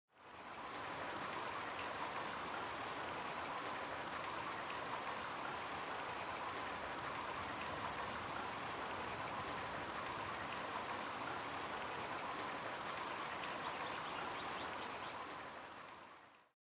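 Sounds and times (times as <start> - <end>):
creek: 0.1 - 16.5.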